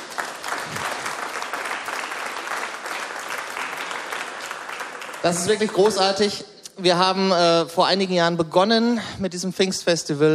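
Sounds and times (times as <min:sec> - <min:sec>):
audience applauding: 0:00.0 - 0:06.3
speech: 0:05.2 - 0:10.3.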